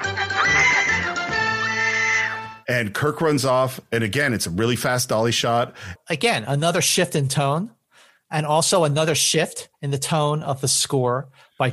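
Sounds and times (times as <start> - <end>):
woman's shrill scream: 0.4 - 2.4
speech: 2.7 - 11.7.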